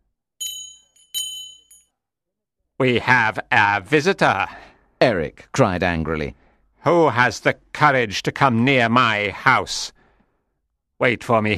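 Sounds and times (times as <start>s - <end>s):
metallic bell ringing: 0.4s - 1.9s
speech: 2.8s - 10.0s, 11.0s - 11.5s.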